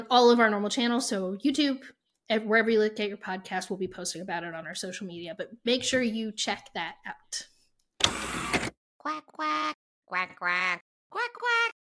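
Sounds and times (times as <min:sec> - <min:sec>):
speech: 0:00.0 - 0:07.5, 0:09.0 - 0:11.8
human voice imitating nasal duck quacks: 0:09.0 - 0:11.8.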